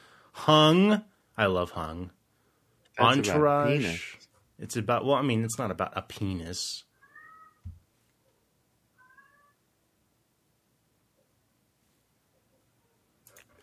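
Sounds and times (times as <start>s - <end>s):
speech: 0.4s - 2.2s, 3.0s - 6.9s
cat meowing: 7.0s - 7.7s, 9.0s - 9.6s.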